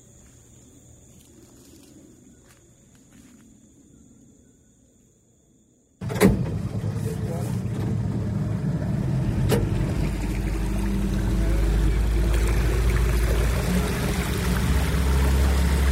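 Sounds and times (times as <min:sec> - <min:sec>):
wind: 0:00.0 - 0:15.9
motorboat engine droning through a flooded tropical forest: 0:06.0 - 0:15.9
water noise: 0:06.4 - 0:15.9.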